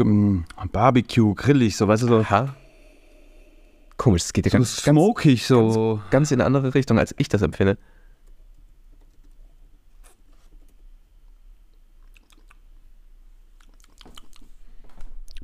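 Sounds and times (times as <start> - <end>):
speech: 0.0 - 2.6, 4.0 - 7.9
wet lip smacking while tasting whisky: 12.0 - 12.7, 13.6 - 14.5, 15.3 - 15.4.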